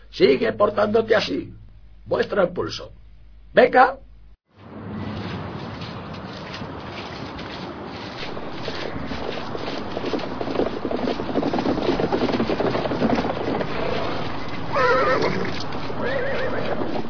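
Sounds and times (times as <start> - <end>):
rumble: 0.0 - 4.4, 5.4 - 17.0
speech: 0.2 - 4.1
hooves clip-clopping: 5.1 - 17.0
horse neighing: 13.8 - 17.0.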